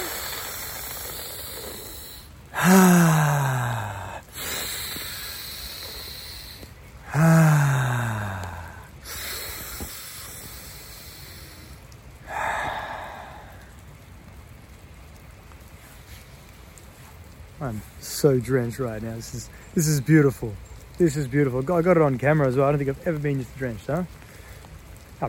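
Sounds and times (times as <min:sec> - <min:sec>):
deep breathing exercise with loud inhales and exhales: 0:00.0 - 0:13.8
speech: 0:02.6 - 0:03.0, 0:18.2 - 0:24.2.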